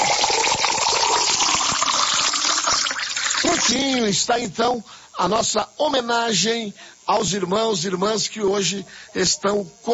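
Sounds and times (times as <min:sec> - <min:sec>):
water poured steadily into a glass for birthday celebrants: 0:00.0 - 0:03.8
speech: 0:03.5 - 0:09.9.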